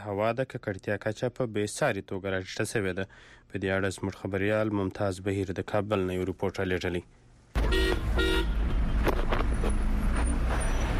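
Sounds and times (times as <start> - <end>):
speech: 0.0 - 7.2
busy central Kabul street traffic: 7.5 - 10.9
car horn toots in central Kabul street traffic: 7.6 - 8.9.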